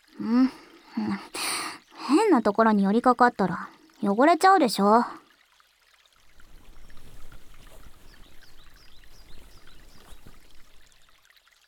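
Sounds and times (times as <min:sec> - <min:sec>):
running water flowing and trickling: 0:00.0 - 0:11.6
speech: 0:00.2 - 0:01.4, 0:02.3 - 0:05.2
faint birds chirping: 0:06.3 - 0:11.2.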